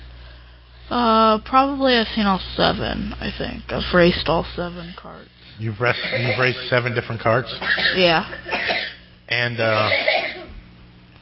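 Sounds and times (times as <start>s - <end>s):
speech: 0.9s - 10.2s
short cough: 7.6s - 9.0s, 9.7s - 10.6s.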